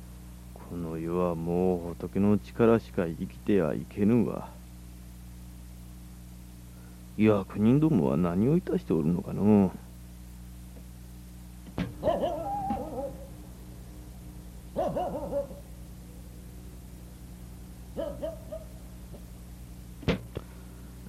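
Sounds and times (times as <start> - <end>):
low steady hum: 0.0 - 21.0
speech: 0.7 - 4.6, 7.2 - 9.8
dog barking: 12.0 - 13.3, 14.8 - 15.7, 18.0 - 18.8.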